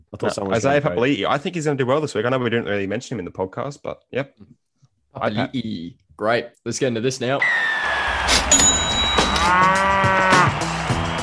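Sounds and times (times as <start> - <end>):
speech: 0.2 - 4.6, 5.2 - 8.8
cow mooing sound effect: 9.3 - 10.6.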